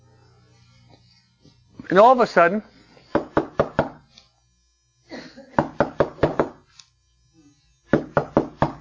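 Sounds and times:
speech: 0:01.9 - 0:02.7
sharp loud knocking on a door: 0:05.6 - 0:06.6, 0:07.9 - 0:08.7.

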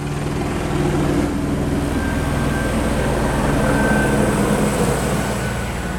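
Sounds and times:
A-Star helicopter rotor thumping: 0:00.0 - 0:05.9.

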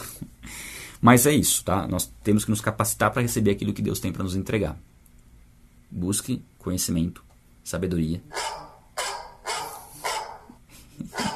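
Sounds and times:
speech: 0:01.0 - 0:04.9, 0:05.9 - 0:08.5
dog barking: 0:08.3 - 0:10.6, 0:11.2 - 0:11.3
laughter: 0:10.8 - 0:11.3.

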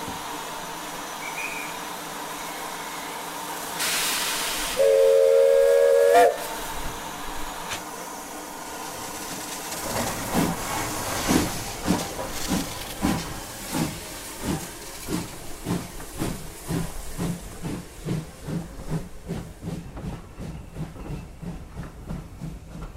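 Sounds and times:
steam hissing: 0:00.0 - 0:22.8
American-built Army shunting steam locomotive whistle: 0:03.8 - 0:06.6.

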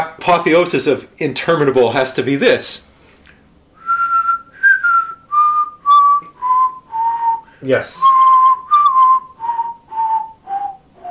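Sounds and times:
speech: 0:00.0 - 0:02.9, 0:07.6 - 0:08.2
person whistling a descending theme song melody: 0:03.8 - 0:11.0.

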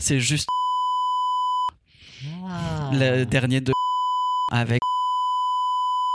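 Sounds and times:
speech: 0:00.0 - 0:00.6, 0:02.9 - 0:03.8, 0:04.5 - 0:04.9
loud steady censorship bleep: 0:00.5 - 0:01.7, 0:03.7 - 0:06.1.

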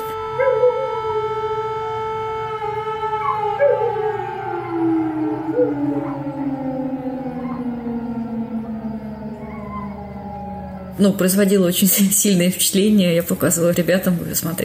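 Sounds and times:
air-raid siren with slowly falling tone: 0:00.0 - 0:14.6
dogs howling along with the siren: 0:00.3 - 0:01.4, 0:02.5 - 0:11.8
speech: 0:11.0 - 0:14.6.

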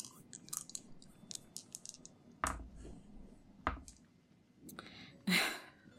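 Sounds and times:
two dice rattling on a hard surface: 0:00.0 - 0:02.6.

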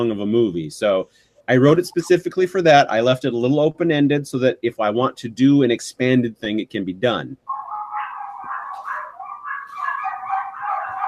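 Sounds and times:
speech: 0:00.0 - 0:07.6
several excited dogs yipping whining and barking: 0:07.4 - 0:11.0.

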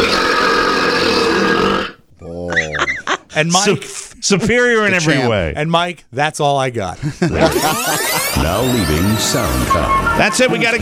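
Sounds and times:
long loud rasping burp from a burping record attempt: 0:00.0 - 0:02.0
laughter: 0:02.3 - 0:05.2, 0:07.0 - 0:10.8
speech: 0:03.4 - 0:10.8.

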